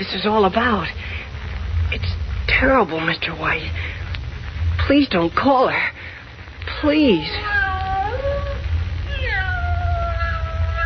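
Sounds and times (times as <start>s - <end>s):
speech: 0.0s - 1.0s, 1.9s - 3.9s, 4.9s - 6.0s, 6.8s - 7.5s
steady low rumble: 0.0s - 10.8s
cat meowing plaintively in a musty dark room: 6.9s - 10.8s.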